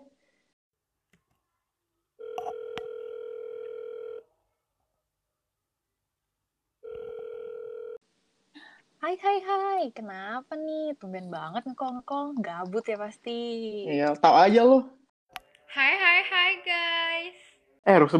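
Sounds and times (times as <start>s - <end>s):
phone call ringing tone: 2.2s - 4.3s, 6.8s - 8.0s
speech: 9.1s - 15.0s, 15.8s - 18.1s.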